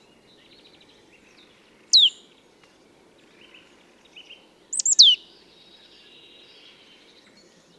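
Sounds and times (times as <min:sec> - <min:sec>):
Marsh tit Poecile palustris calling down-slurred notes: 0:04.8 - 0:05.2.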